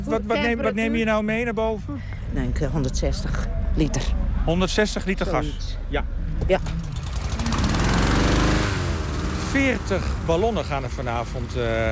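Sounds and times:
speech: 0.0 - 6.8, 9.5 - 11.9
motor-driven fan blowing cold air into hot air balloons: 6.2 - 11.9.

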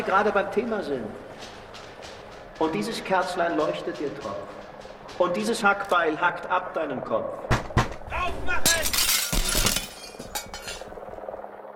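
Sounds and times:
speech: 0.0 - 1.6, 2.6 - 7.5, 8.1 - 9.0
window glass shattering as a ladder tip is rammed through: 8.6 - 10.9
glass debris clinking and tinkling: 8.7 - 11.0.

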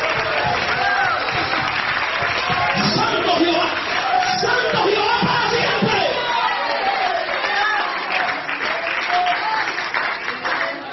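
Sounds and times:
church congregation applauding during a sermon: 0.0 - 10.9.

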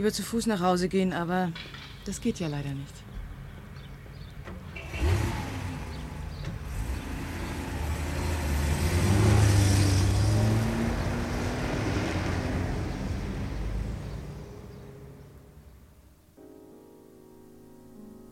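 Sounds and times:
speech: 0.0 - 3.1
car engine driving off: 3.2 - 16.1.

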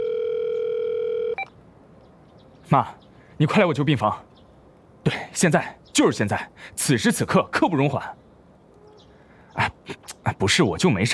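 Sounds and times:
telephone dial tone as a call is placed: 0.0 - 1.6
speech: 2.7 - 4.3, 5.0 - 8.2, 9.9 - 11.1.

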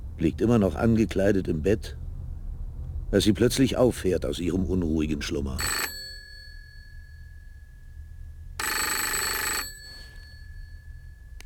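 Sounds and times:
speech: 0.2 - 2.0, 3.1 - 5.8
telephone ringing in a ship's cabin at night: 5.6 - 11.4.

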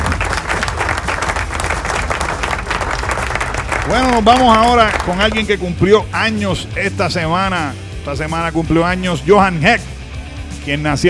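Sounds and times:
applause sound effect of a crowd clapping: 0.0 - 5.6
speech: 3.9 - 9.9, 10.6 - 11.0.

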